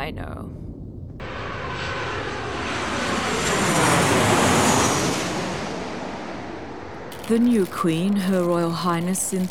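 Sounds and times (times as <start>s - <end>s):
jet aircraft roaring overhead: 1.2s - 6.5s
speech: 7.3s - 9.4s.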